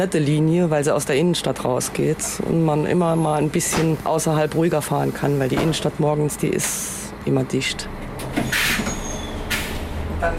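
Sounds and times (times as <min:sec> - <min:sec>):
speech: 0:00.0 - 0:08.8, 0:10.2 - 0:10.3
old city bus rumbling from inside: 0:00.0 - 0:10.3
thin high drawn-out squeak of an old city bus: 0:08.4 - 0:09.8.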